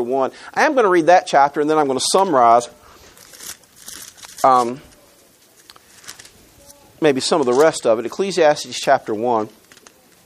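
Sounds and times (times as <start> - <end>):
speech: 0.0 - 2.8, 4.4 - 4.9, 7.0 - 9.6
thin Bible pages rustling as turned with dry fingers: 2.1 - 8.0, 9.0 - 10.2.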